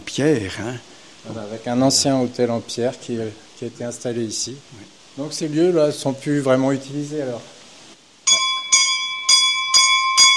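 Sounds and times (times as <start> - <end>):
speech: 0.2 - 7.6
small bell ringing: 8.3 - 10.3.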